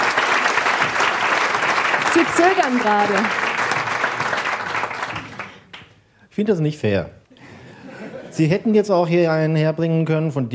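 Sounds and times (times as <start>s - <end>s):
audience applause: 0.0s - 5.9s
speech: 2.1s - 3.4s, 6.4s - 7.2s, 8.4s - 10.5s
laughter: 7.4s - 8.7s.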